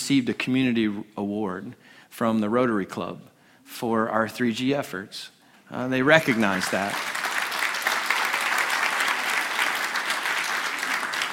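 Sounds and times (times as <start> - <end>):
speech: 0.1 - 7.2
applause from a large crowd: 6.1 - 11.3.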